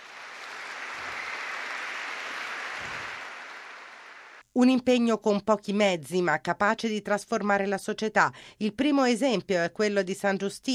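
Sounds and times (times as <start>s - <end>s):
audience applauding: 0.0s - 4.4s
speech: 4.6s - 10.7s.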